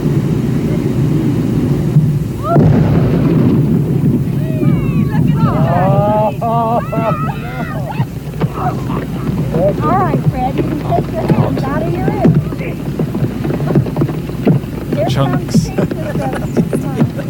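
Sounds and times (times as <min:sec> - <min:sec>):
explosion blowing up a decomposing whale carcass: 0:00.0 - 0:17.2
steady wind noise: 0:00.0 - 0:17.2
laughter: 0:04.4 - 0:12.7, 0:15.0 - 0:17.2
speech: 0:15.2 - 0:15.6.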